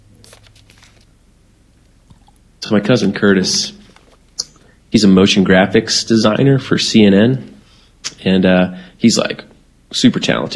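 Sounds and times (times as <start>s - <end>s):
low steady hum: 0.0s - 10.5s
person sipping a drink: 2.1s - 2.4s
speech: 2.7s - 3.8s, 4.9s - 7.5s, 8.2s - 10.5s.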